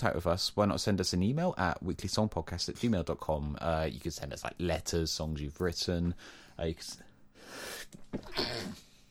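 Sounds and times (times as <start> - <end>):
speech: 0.0 - 8.8
breathing: 6.2 - 8.0
person sneezing: 7.6 - 9.0.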